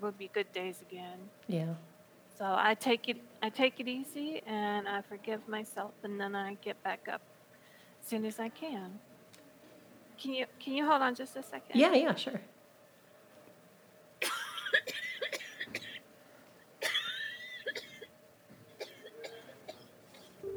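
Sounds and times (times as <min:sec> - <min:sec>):
speech: 0:00.0 - 0:07.3, 0:08.0 - 0:09.1, 0:10.2 - 0:12.5
woman coughing in harsh bursts: 0:14.2 - 0:16.0, 0:16.8 - 0:18.1, 0:18.8 - 0:20.4.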